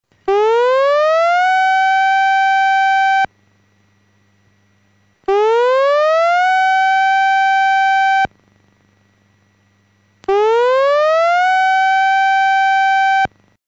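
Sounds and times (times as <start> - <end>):
major tsunami warning siren over digital disaster prevention radio: 0.2 - 3.3, 5.3 - 8.3, 10.3 - 13.3.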